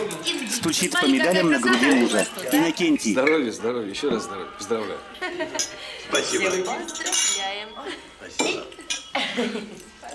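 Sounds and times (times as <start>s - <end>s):
light tableware clatter: 0.0s - 3.4s, 4.8s - 7.5s, 8.4s - 10.1s
glasses clinking in a toast at a family celebration: 0.0s - 3.6s, 4.2s - 10.1s
speech: 0.6s - 9.9s.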